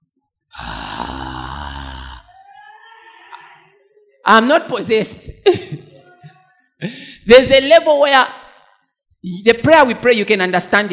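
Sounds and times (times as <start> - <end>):
person groaning while praying: 0.5 - 2.4
speech: 4.3 - 5.8, 6.8 - 8.4, 9.2 - 10.9.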